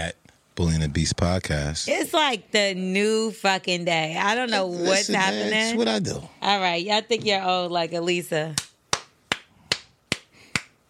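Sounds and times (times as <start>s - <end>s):
speech: 0.0s - 8.6s
slow sharp hand claps: 8.6s - 10.8s.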